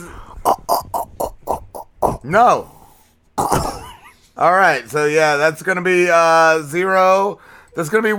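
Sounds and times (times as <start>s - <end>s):
person imitating a pig with nasal oinks in an animal-noise game: 0.0s - 2.4s, 3.4s - 4.0s
speech: 2.2s - 2.8s, 4.4s - 8.1s.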